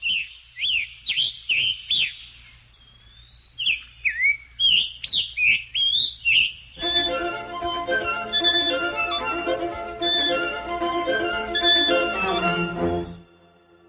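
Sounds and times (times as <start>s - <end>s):
Scarlet Tanager singing short hoarse robin-like phrases: 0.0s - 13.2s
string quartet playing: 6.8s - 13.8s.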